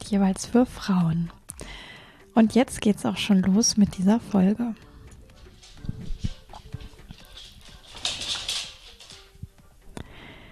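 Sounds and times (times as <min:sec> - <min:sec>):
speech: 0:00.1 - 0:01.4, 0:02.4 - 0:04.9
female dog's paws pattering across a hard floor: 0:05.1 - 0:09.7.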